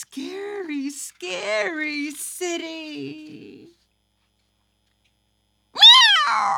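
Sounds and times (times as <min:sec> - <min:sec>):
speech: 0:00.0 - 0:03.8, 0:06.3 - 0:06.5
cat meowing: 0:05.8 - 0:06.5.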